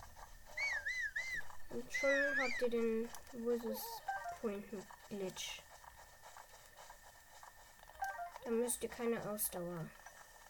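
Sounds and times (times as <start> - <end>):
video game character whistling a short wavering tune while sprinting: 0.5 - 2.7
speech: 1.7 - 5.7, 8.5 - 10.0.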